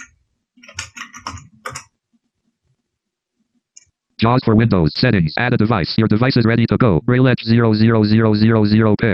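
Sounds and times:
typing on a computer keyboard: 0.0 - 1.9
speech: 4.2 - 9.1.

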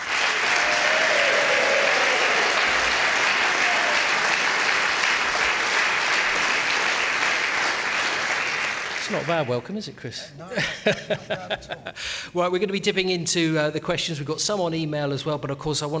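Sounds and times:
audience applause: 0.0 - 9.6
speech: 9.1 - 15.9
laughter: 10.5 - 12.1.

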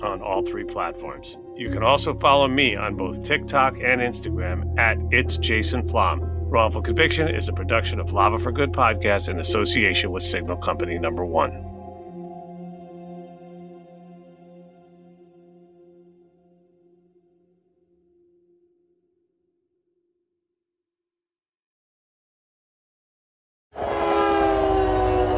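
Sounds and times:
speech: 0.4 - 11.7
long droning train horn: 23.8 - 25.3.

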